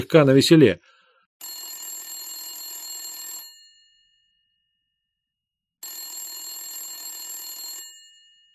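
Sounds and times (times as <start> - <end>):
speech: 0.0 - 0.9
telephone bell ringing with metallic trilling: 1.4 - 4.8, 5.8 - 8.5.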